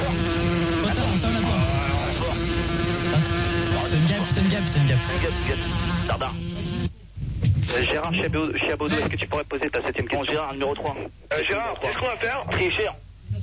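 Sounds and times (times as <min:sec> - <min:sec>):
housefly buzzing around a room: 0:00.0 - 0:06.9
noisy crackly background: 0:00.0 - 0:13.4
speech: 0:05.0 - 0:06.4, 0:08.1 - 0:13.4.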